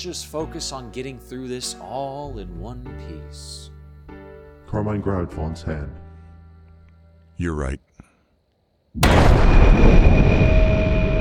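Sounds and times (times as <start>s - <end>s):
speech: 0.0s - 3.7s, 4.7s - 6.0s, 7.4s - 7.8s
loud explosion at a police station in fog: 9.0s - 11.2s.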